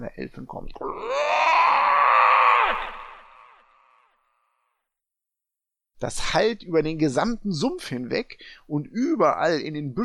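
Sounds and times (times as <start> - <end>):
speech: 0.0 - 1.5, 6.0 - 10.0
person's voice imitating a loud toad scream: 0.8 - 4.3.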